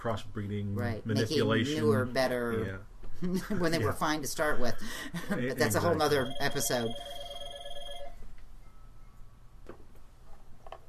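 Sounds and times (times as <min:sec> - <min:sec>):
speech: 0:00.0 - 0:07.3
low hum: 0:00.0 - 0:10.8
laughter: 0:03.2 - 0:04.0, 0:04.8 - 0:06.2
telephone ringing with an electronic trill: 0:05.6 - 0:08.3.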